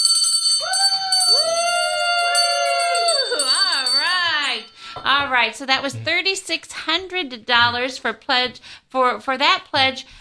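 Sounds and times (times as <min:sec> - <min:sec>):
bell rung in celebration for a founder: 0:00.0 - 0:05.0
several voices whooping and cheering: 0:00.6 - 0:03.9
speech: 0:05.0 - 0:10.2.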